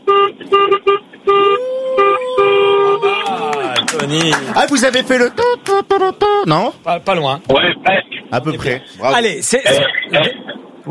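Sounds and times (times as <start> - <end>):
car horn honking: 0.0 - 4.0, 5.3 - 6.7
speech: 4.1 - 10.8.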